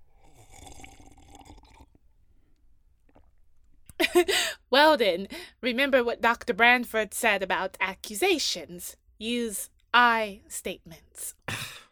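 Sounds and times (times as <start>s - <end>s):
wet slurping: 0.1s - 2.0s
speech: 4.2s - 11.4s.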